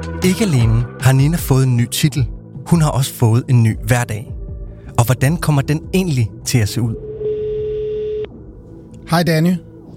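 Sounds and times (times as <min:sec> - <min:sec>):
speech: 0:00.2 - 0:04.4, 0:05.0 - 0:07.1, 0:09.1 - 0:09.9
outgoing phone call electronic ringback tone: 0:07.0 - 0:08.3.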